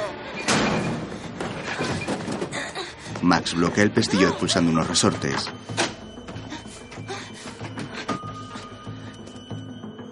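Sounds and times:
refrigerator shoved over crashing against a door: 0.4 - 2.6
speech: 3.2 - 5.8.

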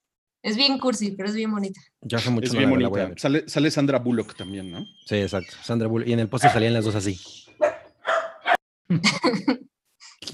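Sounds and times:
speech: 0.4 - 7.5, 8.9 - 10.3
dog barking: 6.4 - 6.9, 7.6 - 8.6.

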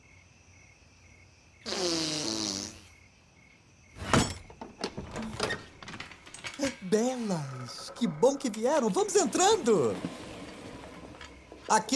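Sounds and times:
buzzy wobbling fart noise made as a password: 1.6 - 2.9
clattering: 4.0 - 11.9
speech: 6.9 - 10.2, 11.7 - 11.9.

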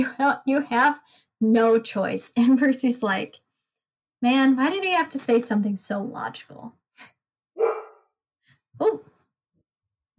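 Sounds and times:
speech: 0.0 - 3.4, 4.2 - 7.1, 8.8 - 9.1
large dog barking: 7.6 - 8.0.

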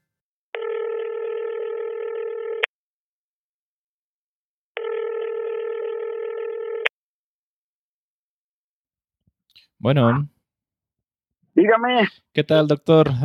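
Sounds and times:
telephone ringing tone heard down the line: 0.6 - 2.7, 4.8 - 6.9
speech: 9.8 - 10.4, 11.6 - 13.2.

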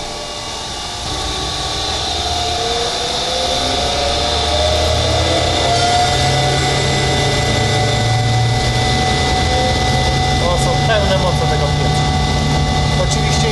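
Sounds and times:
1950s coffee roaster with mixing paddles turning at a roastery in Poland: 0.0 - 13.4.

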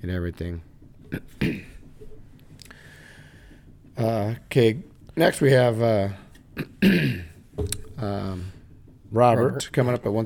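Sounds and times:
speech: 0.0 - 1.7, 4.0 - 10.2
person clearing throat: 1.1 - 1.8, 6.6 - 7.4.

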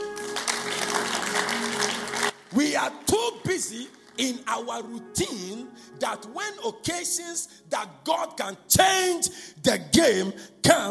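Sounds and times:
audience clapping: 0.0 - 4.6
speech: 2.6 - 10.8.

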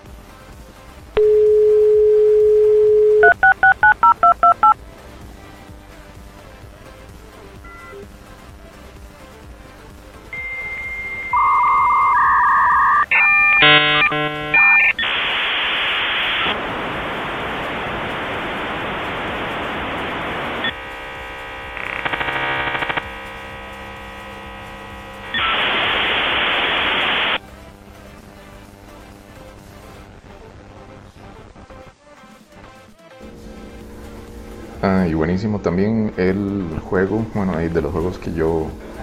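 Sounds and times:
dial-up modem dial tone: 1.2 - 4.8, 10.3 - 15.1, 21.8 - 23.1
dial-up modem dialing beeps: 1.2 - 4.8, 10.4 - 15.1
rush of hissing static: 10.4 - 27.4
speech: 35.3 - 39.0.

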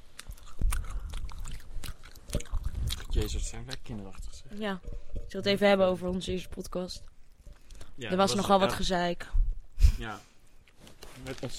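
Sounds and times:
wet chewing of sour candy strips: 0.0 - 8.0
speech: 3.2 - 7.1, 8.0 - 9.4, 10.0 - 10.3, 11.2 - 11.5.

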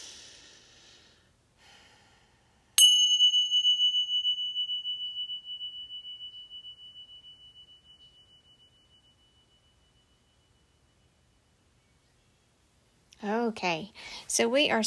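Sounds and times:
soft breathing: 0.0 - 2.8, 13.9 - 14.3
bell ringing for a sound bath: 2.8 - 11.0
speech: 13.2 - 14.8.

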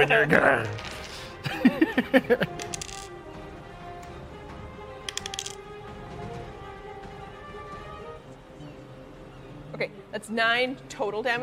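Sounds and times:
speech: 0.0 - 0.9, 1.6 - 2.8, 9.8 - 11.4
dice rolled during a tabletop role-playing game: 0.6 - 1.2, 2.5 - 3.1, 5.1 - 5.6
laughter: 1.4 - 2.6.

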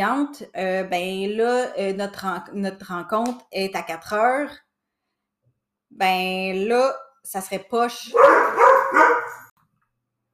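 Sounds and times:
speech: 0.0 - 4.6, 5.9 - 8.4
dog barking: 8.1 - 9.5.

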